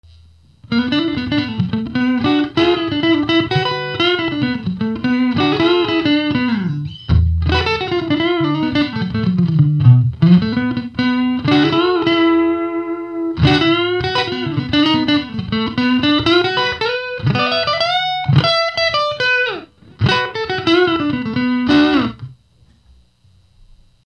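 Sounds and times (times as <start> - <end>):
Stratocaster electric guitar: 0.6 - 22.4.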